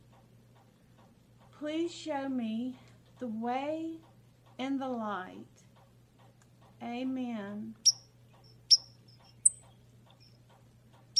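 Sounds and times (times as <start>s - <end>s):
low steady hum: 0.0s - 11.1s
speech: 1.6s - 5.6s, 6.8s - 7.9s
birds singing in high-pitched chirps: 7.8s - 10.4s.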